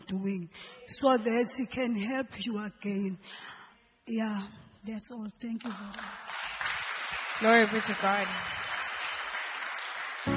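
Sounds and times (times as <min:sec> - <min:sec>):
speech: 0:00.1 - 0:06.4, 0:07.4 - 0:08.6
crowd clapping: 0:05.6 - 0:10.3.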